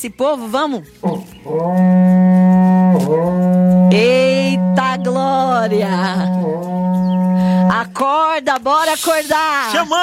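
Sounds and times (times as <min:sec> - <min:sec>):
speech: 0:00.0 - 0:02.2, 0:08.4 - 0:10.0
berrante cattle horn blast: 0:01.6 - 0:07.9.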